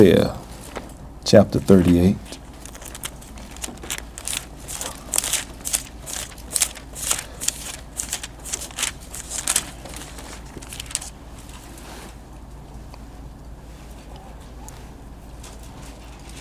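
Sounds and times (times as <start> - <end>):
speech: 0.0 - 0.4, 1.2 - 2.4
thin Bible pages rustling and turning: 1.7 - 11.8.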